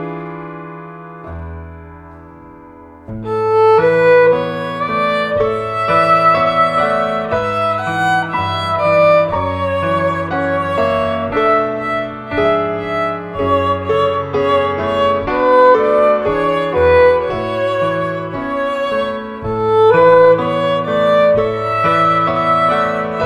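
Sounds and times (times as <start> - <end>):
violin playing instrumental piece: 1.3 - 23.2.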